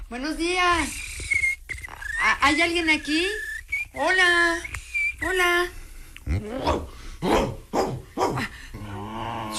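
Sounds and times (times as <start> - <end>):
speech: 0.1 - 1.0, 2.2 - 7.5
dog growling low: 6.3 - 9.5
dog barking: 6.6 - 8.5.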